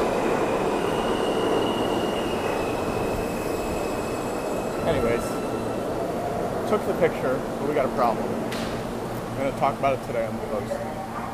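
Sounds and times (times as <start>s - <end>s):
subway train pulling into station: 0.0s - 11.3s
metallic squeal of subway train: 1.0s - 6.0s
speech: 6.7s - 8.7s, 9.4s - 11.1s.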